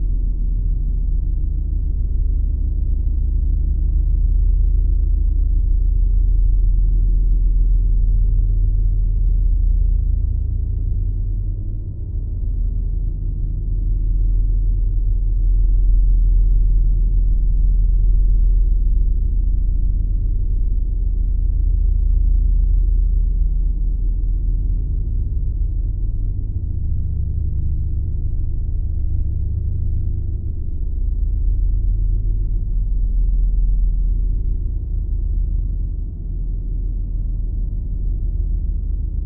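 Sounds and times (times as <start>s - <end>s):
deep low pulsing power source drone: 0.0s - 39.2s.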